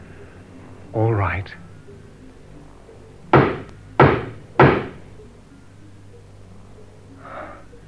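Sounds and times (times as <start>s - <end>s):
faint sound: 0.0s - 7.8s
speech: 0.9s - 1.7s
knocking on a wooden door: 3.3s - 5.0s.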